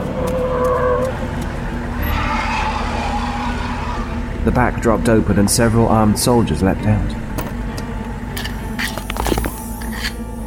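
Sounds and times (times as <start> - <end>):
military truck tire squealing while skidding to a stop by snow-covered ground: 0.0 - 4.4
military truck engine rumbling and idling: 0.0 - 10.4
speech: 4.4 - 7.4.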